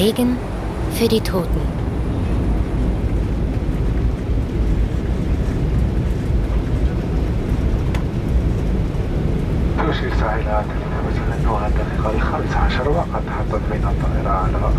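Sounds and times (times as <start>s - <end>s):
speech: 0.0s - 1.8s, 9.9s - 14.7s
airplane on landing approach to Mohamed Boudiaf Airport in Constantine: 0.0s - 14.7s
voices: 9.8s - 14.7s.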